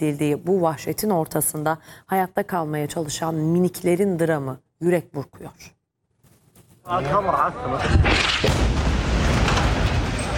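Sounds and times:
speech: 0.0 - 5.8, 6.9 - 8.7
heavy explosion boom at night: 7.8 - 10.3.

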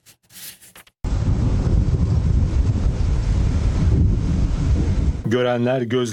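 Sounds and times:
tornado winds roaring across a French town in a powerful storm: 1.0 - 5.7
speech: 5.3 - 6.1.

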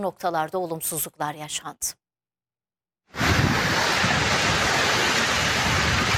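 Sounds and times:
speech: 0.0 - 2.0
strong wind over the city of Adana: 3.1 - 6.1
heavy downpour over the city of Adana: 3.2 - 6.1.

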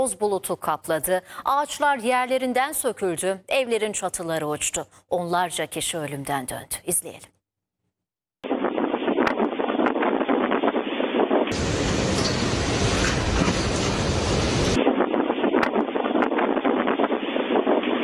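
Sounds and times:
speech: 0.0 - 7.4
violent evening windstorm roaring through Istanbul: 8.5 - 18.0.

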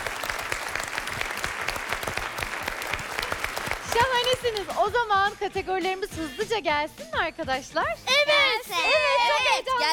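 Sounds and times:
applause for a child's drawing: 0.0 - 5.0
speech: 4.0 - 9.9.

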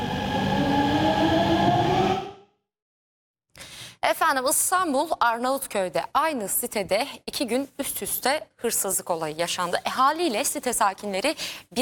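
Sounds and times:
fast train running at 120 kilometres per hour on tracks: 0.0 - 2.4
speech: 4.0 - 11.8.

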